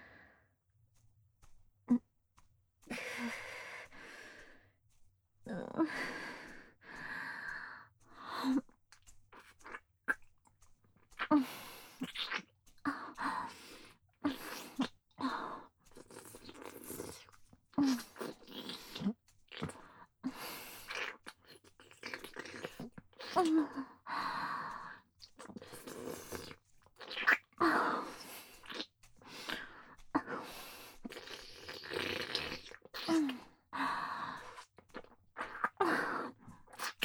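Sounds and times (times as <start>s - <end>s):
slow wet licking mouth sounds: 5.9s - 37.0s.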